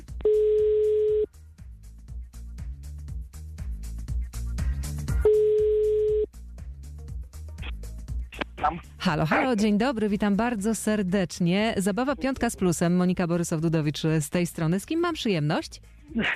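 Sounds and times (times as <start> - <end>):
telephone tones as a call is placed: 0.3 - 1.3, 5.3 - 6.3
rhythmic music bed with punchy beats: 1.3 - 5.3, 6.2 - 10.5
speech: 8.7 - 16.3.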